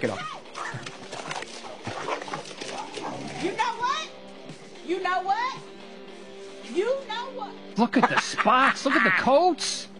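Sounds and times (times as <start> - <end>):
speech: 0.0 - 0.3, 6.8 - 9.9
two dogs fighting, snarling and growling: 0.2 - 3.7
laughter: 7.8 - 9.4.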